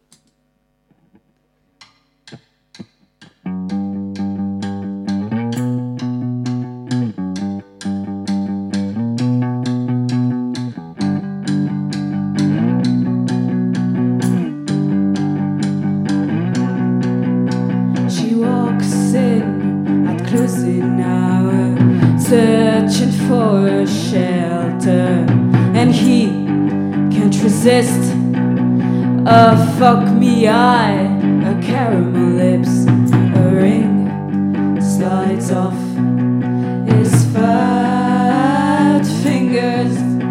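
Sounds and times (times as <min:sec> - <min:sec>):
live garage rock band semi-acoustic guitars: 0:03.6 - 0:40.2
live garage rock band steady drums: 0:21.8 - 0:22.4, 0:25.3 - 0:26.2, 0:32.9 - 0:33.8, 0:36.9 - 0:37.5.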